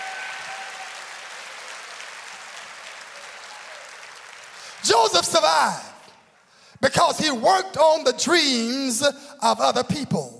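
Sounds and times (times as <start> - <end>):
church audience clapping in praise: 0.0 - 5.1
speech: 4.8 - 5.9, 6.8 - 10.3.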